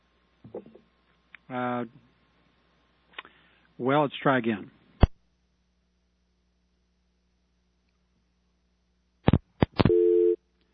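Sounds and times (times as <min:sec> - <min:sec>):
speech: 0:01.5 - 0:02.0, 0:03.8 - 0:04.8
telephone busy signal after a caller's line dropped: 0:09.8 - 0:10.4.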